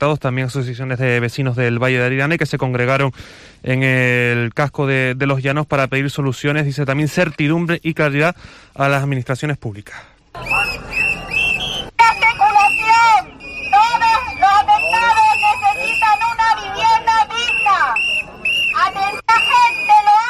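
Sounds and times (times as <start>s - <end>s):
speech: 0.0s - 10.9s
crowd of residents affected by a volcanic eruption at a street protest in Los Llanos: 10.4s - 20.2s
shrill whistles blowing at a street protest in Los Llanos: 10.4s - 20.2s.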